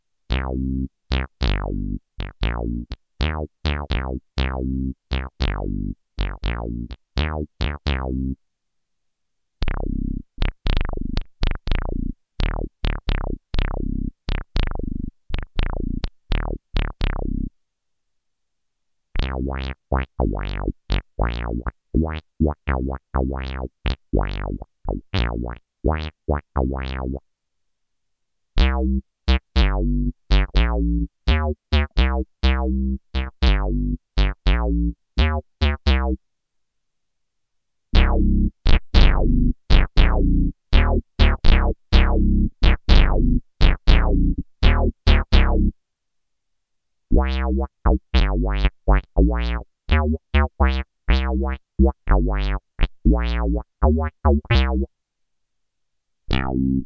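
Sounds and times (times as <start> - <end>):
bass synthesizer: 0.3 - 8.4, 9.6 - 17.5, 19.2 - 27.2, 28.6 - 36.2, 38.0 - 45.8, 47.1 - 54.9, 56.3 - 56.8.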